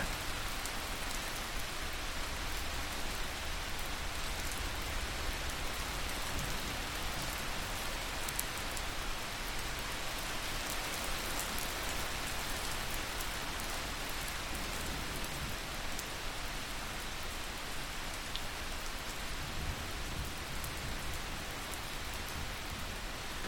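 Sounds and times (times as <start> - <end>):
distant rain pattering on a surface: 0.0 - 23.4.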